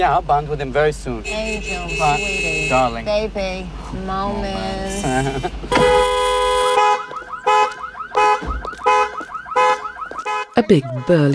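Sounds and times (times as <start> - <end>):
speech: 0.0 - 6.1, 10.6 - 11.3
car alarm wailing and pulsing with swooping electronic chirps: 1.2 - 3.4, 5.0 - 11.3
laughter: 3.7 - 6.0.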